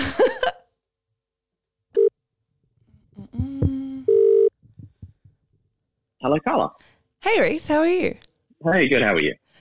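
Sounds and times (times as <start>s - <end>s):
phone line tones of an outgoing call connecting: 4.1s - 4.5s
speech: 6.2s - 9.4s.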